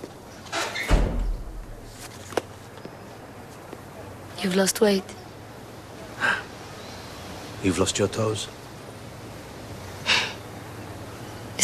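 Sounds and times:
courtyard door swinging shut with a solid thud: 0.5 - 1.9
speech: 4.4 - 5.2, 7.6 - 8.6.

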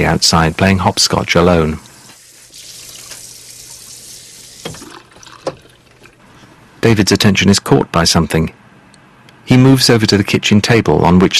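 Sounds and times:
speech: 0.0 - 1.9, 6.8 - 8.6, 9.5 - 11.3
tap water running at a kitchen sink as dishes are washed: 0.0 - 6.2.

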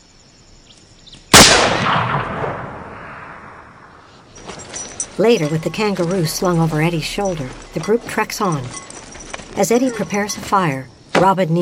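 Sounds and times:
rifle gunshot aimed at a young kangaroo on a ridge: 1.3 - 3.7
speech: 5.2 - 8.9, 9.6 - 11.5.

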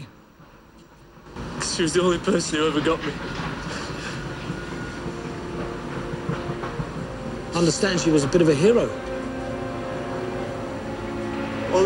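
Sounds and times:
train rushing past: 0.0 - 11.8
rhythmic rattle of wheels over track: 0.4 - 8.9
speech: 1.8 - 3.7, 7.6 - 9.1.

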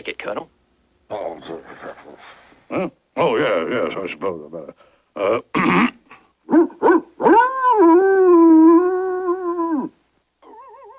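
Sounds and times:
speech: 0.0 - 5.9
puppy howling: 6.5 - 10.9.

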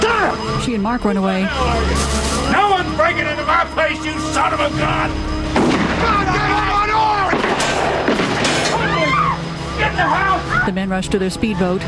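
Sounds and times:
people shouting: 0.0 - 10.8
speech: 0.7 - 6.7, 9.8 - 11.8
shotgun fired outdoors by a boathouse: 5.6 - 6.2, 7.3 - 8.9.

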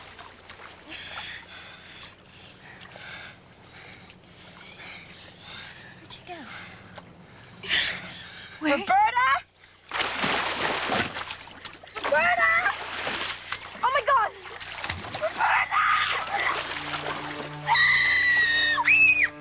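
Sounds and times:
water churning and splashing: 0.0 - 8.8, 9.6 - 19.4
splash of someone jumping from a tree into shallow water: 9.9 - 19.3
people giving high-pitched shouts and screams: 12.0 - 12.9, 15.1 - 19.4.

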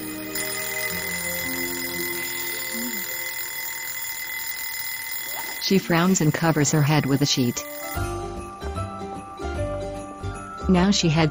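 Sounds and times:
continuous bright electronic alarm clock ringing: 0.0 - 8.2
speech: 5.7 - 8.2, 10.7 - 11.2.

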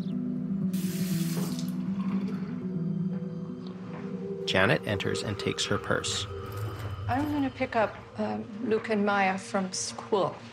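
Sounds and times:
water running from a kitchen tap into a glass: 0.8 - 2.4
steady low hum: 1.8 - 10.0
speech: 4.5 - 6.4, 7.1 - 10.5.

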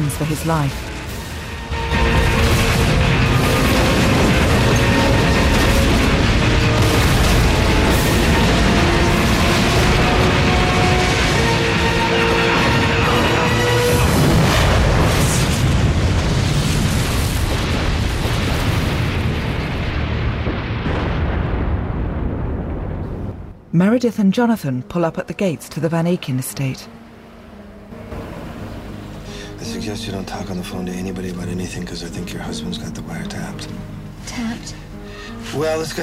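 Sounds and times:
speech: 0.1 - 1.0, 23.8 - 27.0, 29.6 - 34.9, 35.5 - 36.0
building entranceway exploding in rubble and sparks: 0.8 - 23.6.

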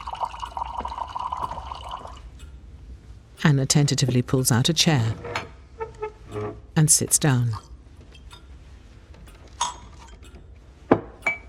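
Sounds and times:
tea pouring into a cup at a table: 0.0 - 2.2
speech: 3.5 - 5.4, 6.8 - 7.7.

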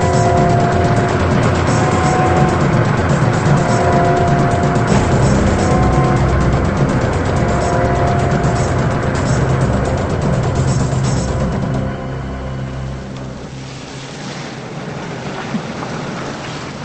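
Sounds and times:
broadband noise: 0.0 - 14.8
old blue car engine rumbling on a rain-soaked street at night: 0.0 - 15.1.

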